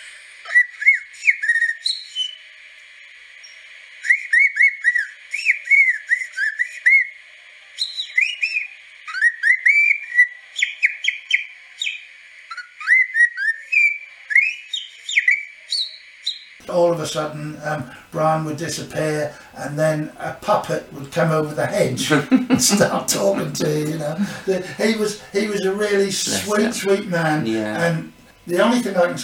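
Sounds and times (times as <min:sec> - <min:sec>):
man whistling birdsong imitation: 0:00.4 - 0:02.4, 0:03.4 - 0:16.5
laughter: 0:16.6 - 0:29.2
speech: 0:16.8 - 0:29.2.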